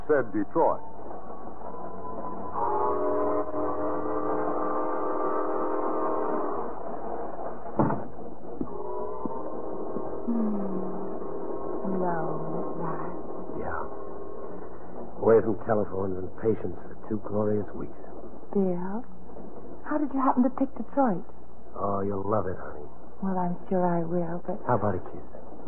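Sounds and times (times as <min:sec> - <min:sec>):
rumble of passenger train cars pulling out of a depot: 0:00.0 - 0:20.6
speech: 0:00.1 - 0:00.9, 0:15.4 - 0:19.1, 0:19.9 - 0:25.4
passenger train whistle: 0:01.6 - 0:07.6, 0:08.7 - 0:17.9.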